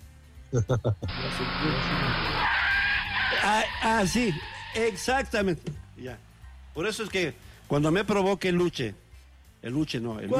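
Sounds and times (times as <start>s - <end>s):
speech: 0.5s - 2.6s, 3.4s - 9.0s, 9.6s - 10.3s
car brakes screeching: 1.1s - 5.4s.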